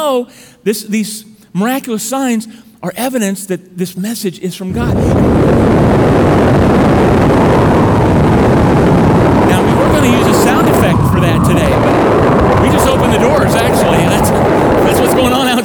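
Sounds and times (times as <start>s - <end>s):
speech: 0.0s - 7.7s
voices: 4.7s - 5.3s, 9.4s - 15.6s
strong wind roaring outside: 4.7s - 15.6s.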